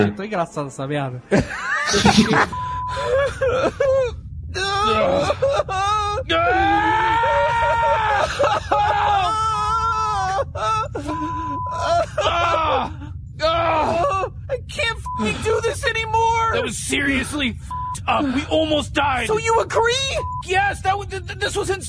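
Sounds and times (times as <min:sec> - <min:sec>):
speech: 0:00.0 - 0:09.6, 0:10.6 - 0:21.8
laughter: 0:01.3 - 0:04.1, 0:04.9 - 0:06.4, 0:07.5 - 0:13.0, 0:15.1 - 0:16.0
cartoon characters wailing and sobbing in a spaceship: 0:01.6 - 0:17.4.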